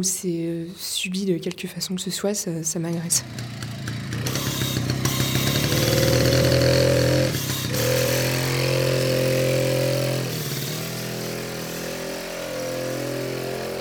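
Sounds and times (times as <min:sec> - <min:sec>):
speech: 0:00.0 - 0:04.5
loud motor engine running: 0:03.2 - 0:13.7.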